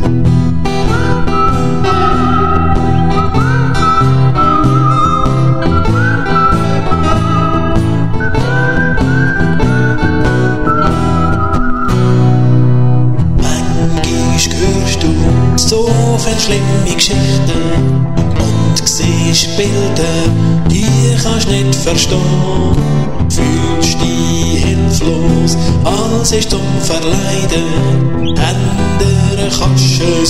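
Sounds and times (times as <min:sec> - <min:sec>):
full band playing a steady laid-back groove: 0:00.0 - 0:30.2
whistled blues melody: 0:00.7 - 0:12.9, 0:28.1 - 0:28.5.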